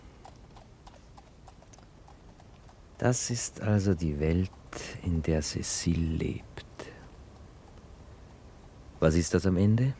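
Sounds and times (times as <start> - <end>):
horse hooves clip-clopping as a horse-drawn tram arrives: 0.0 - 7.9
low constant rumble of a horse-drawn tram: 0.0 - 9.9
speech: 3.0 - 6.5, 9.0 - 9.9.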